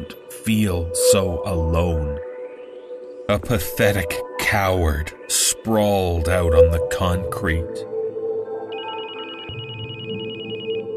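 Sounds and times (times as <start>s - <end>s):
speech: 0.1s - 2.3s, 3.3s - 7.9s
phone ringtone trilling: 8.7s - 10.9s.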